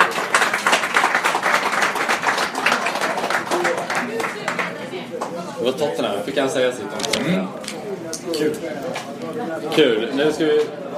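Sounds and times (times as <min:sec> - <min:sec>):
group of people applauding: 0:00.0 - 0:05.4
speech: 0:05.8 - 0:07.6, 0:08.2 - 0:10.9.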